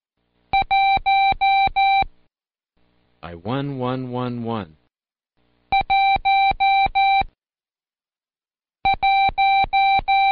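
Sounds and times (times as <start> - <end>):
Morse code for the number one keyed as electronic tones: 0.6 - 2.1, 5.8 - 7.4, 8.9 - 10.2
speech: 3.3 - 4.8.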